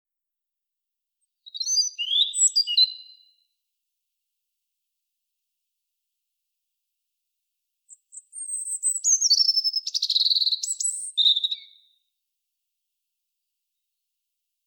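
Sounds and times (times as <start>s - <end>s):
European robin Erithacus rubecula singing: 1.4s - 3.4s, 7.9s - 12.0s.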